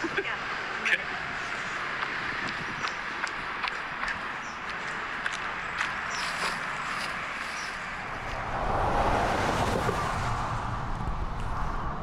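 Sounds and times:
steady roadside traffic rumble and hiss on a busy highway: 0.0s - 12.0s
footsteps crunching: 1.5s - 8.4s
vehicle rushing past: 7.6s - 12.0s.

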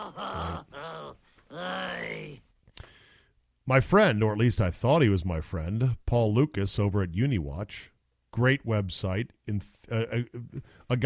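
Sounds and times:
person groaning: 0.0s - 2.4s
speech: 3.7s - 11.0s.

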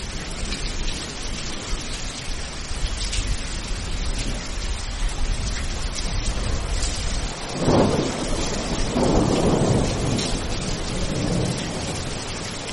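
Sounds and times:
steady dense rain: 0.0s - 12.7s
low thunder rumbling: 2.7s - 12.7s.

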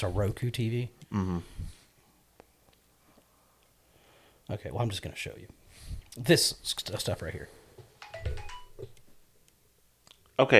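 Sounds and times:
speech: 0.0s - 1.7s, 4.5s - 7.6s, 10.4s - 10.5s
soft noise: 0.0s - 10.5s
phone ringtone with electronic tones: 8.0s - 8.9s.

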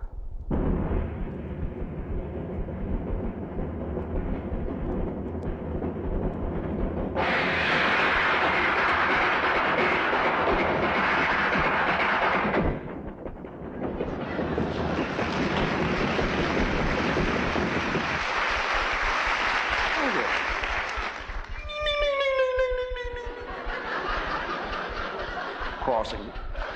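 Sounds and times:
train rumbling inside a passenger car: 0.0s - 26.7s
high metallic train wheel squeal: 21.5s - 24.2s
laughter: 23.3s - 26.7s.

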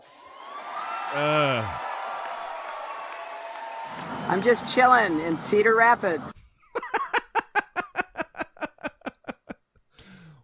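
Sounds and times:
crowd cheering: 0.3s - 5.4s
person letting out a loud swooping whoop: 1.1s - 1.8s
speech: 1.1s - 1.8s, 4.3s - 6.4s
laughter: 6.8s - 9.6s.

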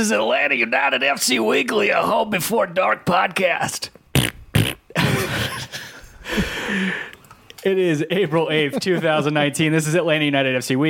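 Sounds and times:
speech: 0.0s - 4.0s, 7.6s - 10.8s
mouth fart noises: 4.1s - 5.2s
laughter: 5.0s - 7.1s, 8.0s - 9.6s.

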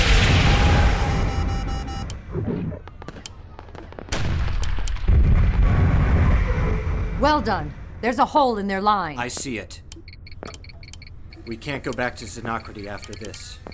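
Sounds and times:
incoming missile explosion in a space battle: 0.0s - 1.4s, 3.9s - 8.0s
speech: 7.2s - 9.8s, 11.5s - 13.7s.

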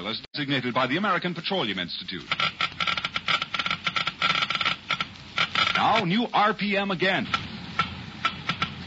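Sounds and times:
speech: 0.0s - 2.8s, 5.8s - 7.4s
Geiger counter clicking rapidly: 2.2s - 6.1s, 7.2s - 8.8s.

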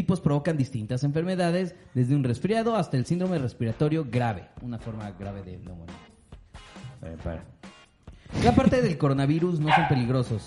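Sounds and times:
speech: 0.0s - 6.1s, 7.0s - 7.6s, 8.3s - 10.4s
dog barking: 9.6s - 10.2s.

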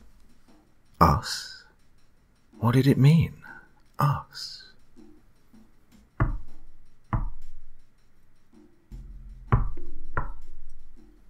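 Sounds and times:
speech: 1.2s - 1.4s, 2.6s - 3.4s, 4.0s - 4.7s
heavy knocking on a back door: 6.2s - 7.6s.

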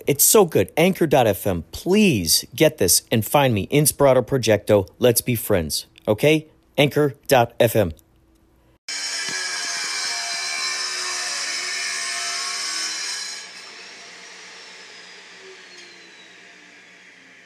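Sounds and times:
speech: 0.1s - 8.0s
power tool motor whining: 8.9s - 17.4s.

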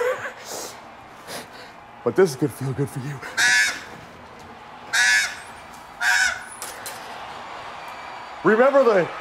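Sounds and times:
speech: 2.0s - 3.4s, 8.4s - 9.2s
crow-like birds cawing: 3.2s - 4.1s, 4.9s - 6.7s.

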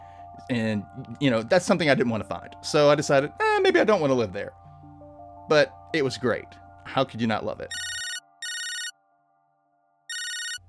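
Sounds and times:
speech: 0.5s - 4.6s, 5.5s - 7.8s
telephone ringing for an incoming call: 7.7s - 9.0s, 10.1s - 10.6s.

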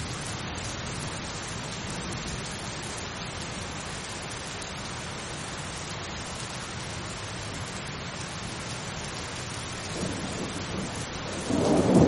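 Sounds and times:
calm steady rain in a thunderstorm: 0.0s - 12.0s
thunder: 9.9s - 12.0s.

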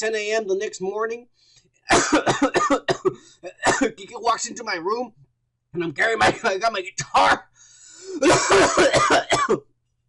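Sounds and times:
speech: 0.0s - 9.7s
harsh coughs: 1.9s - 4.0s, 8.1s - 9.6s.

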